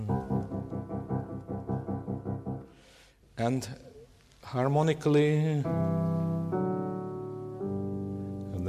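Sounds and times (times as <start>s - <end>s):
piano playing repeated quaver chords in C major: 0.1s - 2.9s, 5.6s - 8.6s
speech: 3.4s - 3.8s, 4.5s - 6.2s.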